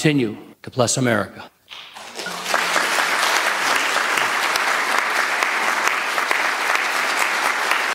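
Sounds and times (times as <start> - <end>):
speech: 0.0 - 1.9
large audience applauding: 1.7 - 7.9.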